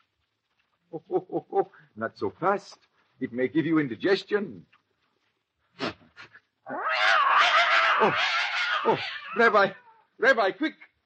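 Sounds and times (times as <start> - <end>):
speech: 0.9 - 4.8, 8.0 - 10.9
poisoned cat yowling: 6.7 - 10.0.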